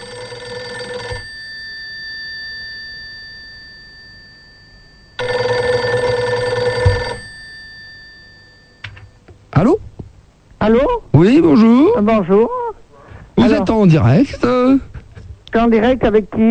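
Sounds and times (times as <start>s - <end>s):
telephone ringing with electronic buzzing rings during a phone call: 0.0s - 1.6s, 5.1s - 9.3s
speech: 10.6s - 12.6s, 13.4s - 14.9s, 15.6s - 16.4s.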